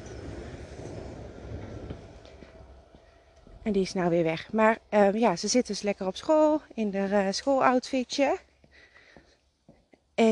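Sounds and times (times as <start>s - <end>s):
train rumbling past: 0.0s - 5.1s
speech: 3.7s - 8.5s.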